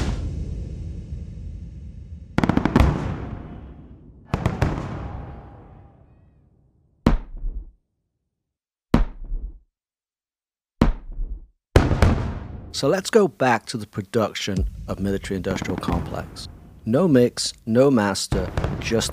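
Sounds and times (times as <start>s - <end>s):
layered explosion sound effects in a song breakdown: 0.0s - 6.4s, 11.8s - 12.8s, 14.6s - 17.0s
speech: 12.8s - 19.1s.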